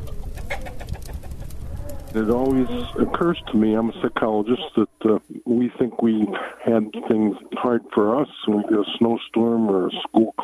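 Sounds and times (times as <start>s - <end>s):
steady low rumble: 0.0s - 8.9s
chickens clucking: 0.0s - 10.4s
speech: 2.1s - 10.4s.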